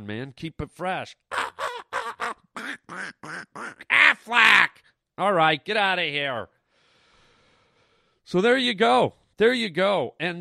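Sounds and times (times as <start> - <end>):
speech: 0.1 - 1.3, 2.8 - 6.6, 8.3 - 10.3
voice imitating duck quacks: 1.3 - 4.8.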